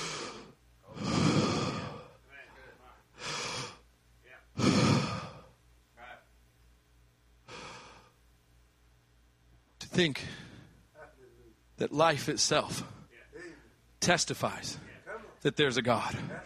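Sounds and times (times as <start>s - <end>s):
person breathing deeply and deliberately in and out: 0.0s - 2.2s, 3.2s - 3.8s, 4.6s - 5.6s, 7.5s - 8.2s, 10.2s - 10.8s
speech: 10.0s - 10.4s, 11.8s - 13.0s, 14.0s - 16.4s.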